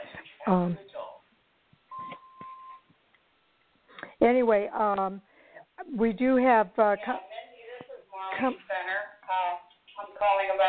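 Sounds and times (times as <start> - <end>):
speech: 0.5 - 0.9, 4.2 - 5.3, 5.9 - 7.3, 8.4 - 8.9
mobile phone ringing: 1.9 - 2.8
faint beeps: 1.9 - 2.9.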